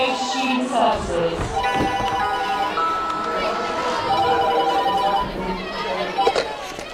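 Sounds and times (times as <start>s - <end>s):
speech: 0.0s - 1.9s
murmur of several people talking: 0.0s - 6.9s
telephone ringing with electronic trill at a school reception: 1.6s - 5.4s.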